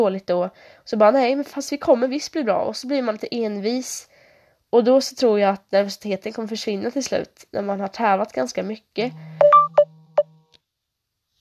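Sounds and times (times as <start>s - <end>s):
speech: 0.0s - 4.1s, 4.7s - 9.4s
mobile phone vibrating: 9.0s - 10.6s.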